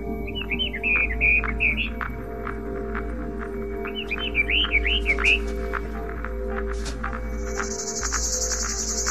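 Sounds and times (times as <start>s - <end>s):
Orphean warbler singing: 0.0s - 2.4s, 3.5s - 9.0s
insect buzz: 7.2s - 9.0s.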